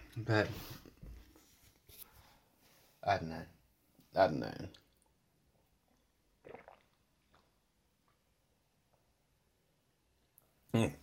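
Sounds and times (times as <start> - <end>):
speech: 0.2 - 0.9, 3.0 - 4.8
swallowing water: 6.4 - 7.5
water sipped from a glass: 6.4 - 7.5.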